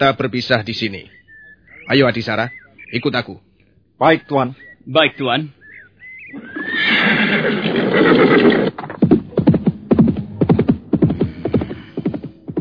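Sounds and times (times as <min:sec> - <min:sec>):
speech: 0:00.0 - 0:01.2, 0:01.9 - 0:05.6, 0:06.3 - 0:08.6
horse whinnying: 0:06.2 - 0:09.0
horse hooves clip-clopping: 0:08.1 - 0:12.5.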